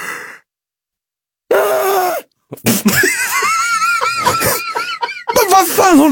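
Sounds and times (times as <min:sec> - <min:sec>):
person imitating a woman's loud shrieking yawn: 0:01.5 - 0:02.3
speech: 0:02.5 - 0:03.2, 0:05.9 - 0:06.1
laughter: 0:02.6 - 0:06.1.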